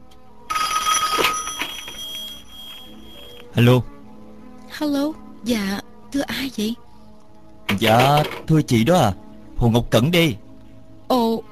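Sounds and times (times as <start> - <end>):
telephone bell ringing with a bright metallic jangle: 0.5 - 3.4
speech: 3.6 - 3.9, 4.8 - 6.8, 7.7 - 10.4.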